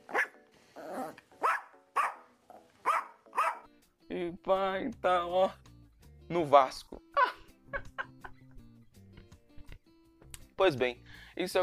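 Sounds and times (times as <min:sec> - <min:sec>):
dog barking: 0:00.0 - 0:00.4, 0:01.4 - 0:03.7
speech: 0:04.2 - 0:05.7, 0:06.3 - 0:07.0, 0:10.6 - 0:11.6
laughter: 0:07.2 - 0:08.6.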